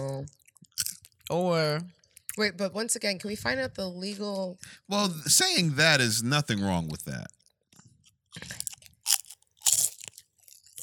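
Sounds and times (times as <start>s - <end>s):
crunchy chewing of a crisp cookie: 0.3s - 1.4s, 2.1s - 2.4s, 6.9s - 10.8s
speech: 1.3s - 7.4s.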